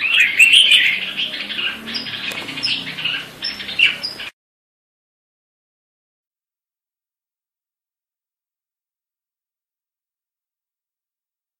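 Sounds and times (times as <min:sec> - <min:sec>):
female grey-cheeked bulbul harsh chattering calls: 0:00.0 - 0:04.3.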